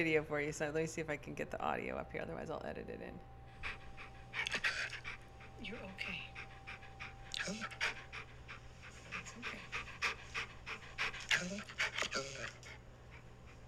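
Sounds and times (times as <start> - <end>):
speech: 0.0 - 3.8, 5.6 - 6.3, 7.4 - 8.0, 11.4 - 12.6
low hum: 0.0 - 13.6
dog panting heavily and quickly: 3.5 - 13.6.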